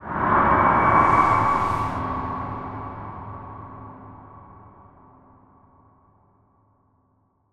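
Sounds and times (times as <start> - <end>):
ghostly horror sound: 0.0 - 3.6.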